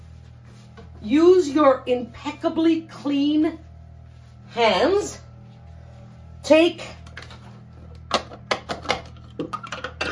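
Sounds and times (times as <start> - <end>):
speech: 1.0 - 3.6, 4.5 - 5.2, 6.5 - 7.0
food processor bowl knocking as contents are dumped onto potatoes: 8.1 - 10.0.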